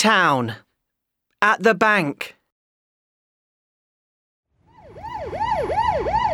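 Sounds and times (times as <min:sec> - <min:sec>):
speech: 0:00.0 - 0:00.6, 0:01.4 - 0:02.4
police car siren wailing in town: 0:04.6 - 0:06.3.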